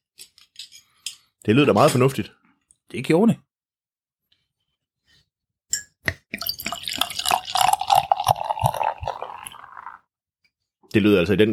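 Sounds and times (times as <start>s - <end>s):
speech: 1.4s - 3.5s, 10.9s - 11.5s
glass clinks: 5.7s - 9.4s
sour barrel-aged beer glugging from a bottle into a glass: 6.3s - 10.0s.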